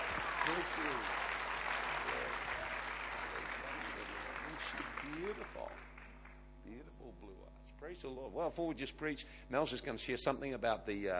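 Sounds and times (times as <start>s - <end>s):
audience clapping in sustained applause: 0.0s - 6.5s
speech: 0.5s - 1.3s, 4.6s - 6.0s, 6.6s - 11.1s.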